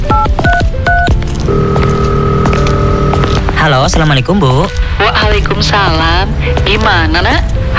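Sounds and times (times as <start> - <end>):
steady sustained ringback or dial tone: 0.1 - 3.4
speech: 3.7 - 7.7.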